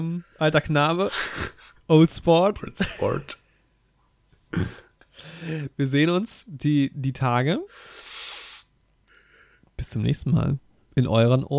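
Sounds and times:
speech: 0.0s - 3.4s, 4.5s - 8.1s, 9.8s - 11.5s
softer, quieter breath: 7.7s - 9.7s.

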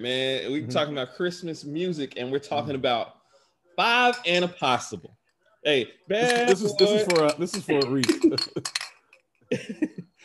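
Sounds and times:
speech: 0.0s - 3.2s, 3.8s - 8.8s, 9.5s - 9.9s
San Pellegrino glass bottles clinking together: 6.2s - 9.2s.

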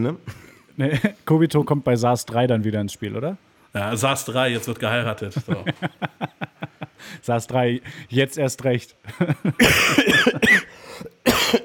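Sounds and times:
speech: 0.0s - 10.6s
laughter: 5.3s - 7.1s, 9.1s - 9.7s
harsh raspy coughs into the microphone: 9.6s - 11.6s.

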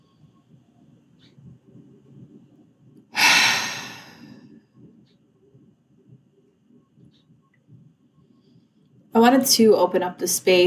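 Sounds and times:
loud airy sighing exhale through the mouth: 3.2s - 4.3s
quiet slow breath in through the nose: 3.2s - 4.3s
speech: 9.2s - 10.6s.

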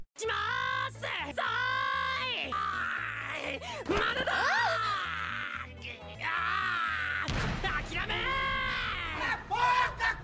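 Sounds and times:
animated character screaming loudly: 0.2s - 10.1s.

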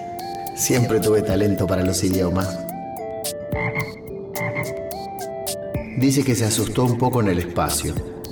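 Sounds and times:
steady warbling tonal background: 0.0s - 7.2s
speech: 0.6s - 2.7s, 6.0s - 8.2s
toad croaking: 3.6s - 4.8s.

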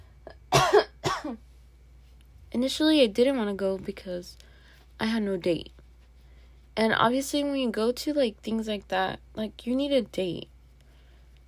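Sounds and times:
forceful coughs with a rasping tail: 0.5s - 1.4s
speech: 2.6s - 5.8s, 6.8s - 10.5s.

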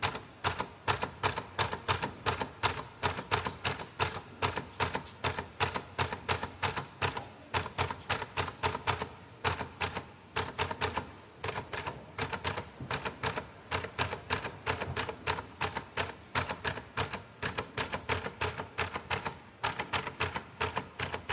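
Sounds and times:
typewriter typing: 0.0s - 21.3s.

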